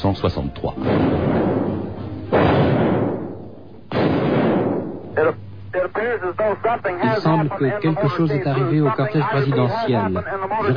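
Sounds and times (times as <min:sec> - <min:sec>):
speech: 0:00.0 - 0:01.5, 0:06.3 - 0:10.7
gunshots on an old narrow-band radio recording: 0:00.8 - 0:05.1.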